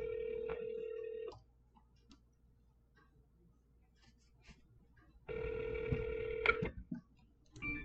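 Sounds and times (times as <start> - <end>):
ringback tones from an outgoing phone call: 0.0 - 1.3, 5.3 - 6.6.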